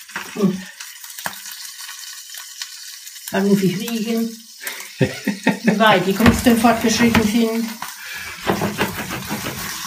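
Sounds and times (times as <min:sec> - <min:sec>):
food sizzling in a frying pan: 0:00.0 - 0:09.8
speech: 0:00.4 - 0:00.7, 0:03.3 - 0:07.9
frying pan shaken to shed water drops: 0:05.8 - 0:09.8
single knock: 0:06.2 - 0:07.4, 0:08.4 - 0:09.7.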